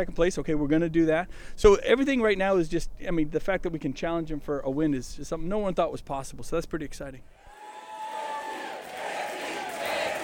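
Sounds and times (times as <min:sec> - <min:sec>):
speech: 0:00.0 - 0:07.4
crowd cheering at a campaign rally in Exeter New Hampshire: 0:07.4 - 0:10.2.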